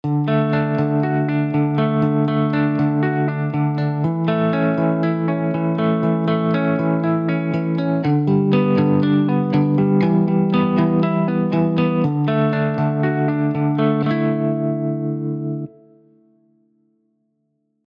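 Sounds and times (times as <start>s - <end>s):
Les Paul model electric guitar arpeggio: 0.0s - 16.5s.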